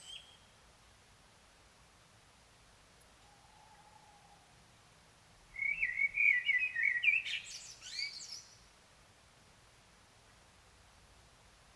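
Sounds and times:
common blackbird (Turdus merula) song: 0.0s - 0.5s, 5.5s - 8.7s.

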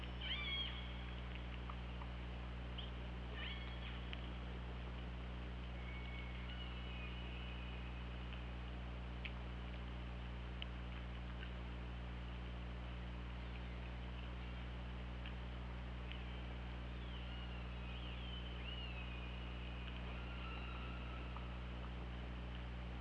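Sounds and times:
steady low underwater hum and hiss: 0.0s - 22.9s
killer whale pulsed calls recorded by hydrophone: 0.2s - 1.0s, 3.4s - 4.1s, 16.2s - 22.0s.

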